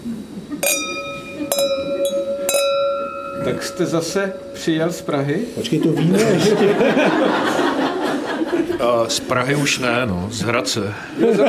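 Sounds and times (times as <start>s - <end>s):
glasses clinking in a toast: 0.6s - 6.9s
speech: 3.4s - 7.6s, 8.8s - 11.4s
laughter: 5.6s - 9.8s, 11.2s - 11.4s.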